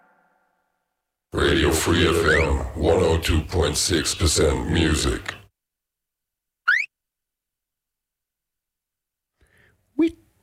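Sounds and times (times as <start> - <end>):
speech: 1.4 - 5.4
short electronic beeps: 6.7 - 6.9.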